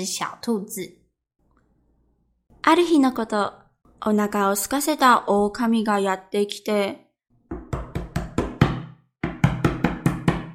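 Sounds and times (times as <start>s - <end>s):
speech: 0.0s - 1.0s, 2.6s - 7.0s
knocking on a wooden house door: 7.5s - 10.5s.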